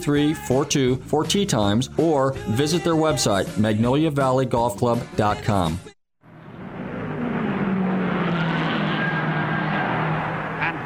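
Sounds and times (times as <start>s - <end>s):
speech: 0.0s - 5.9s
race car roaring past at high speed on a racing circuit: 6.3s - 10.8s.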